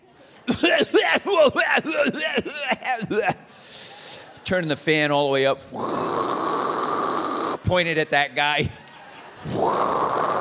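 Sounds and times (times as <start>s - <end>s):
laughter: 0.0s - 4.9s, 8.6s - 10.3s
person imitating an airplane passenger's coughing fit: 0.5s - 3.5s
speech: 0.5s - 3.6s, 4.5s - 6.4s, 7.6s - 8.8s.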